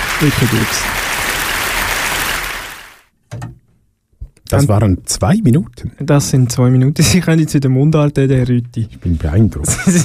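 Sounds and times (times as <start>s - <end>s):
audience applause: 0.0s - 3.1s
speech: 0.2s - 1.0s, 4.5s - 10.0s
laughter: 9.6s - 10.0s.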